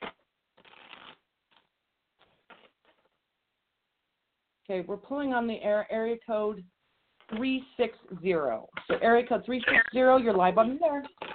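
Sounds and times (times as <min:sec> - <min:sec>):
deck of cards being shuffled: 0:00.0 - 0:01.6, 0:02.2 - 0:03.1
speech: 0:04.7 - 0:06.7, 0:07.3 - 0:11.2.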